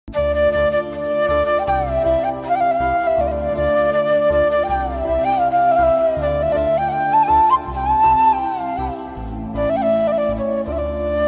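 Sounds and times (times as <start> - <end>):
flute cover background music: 0.1 - 11.2.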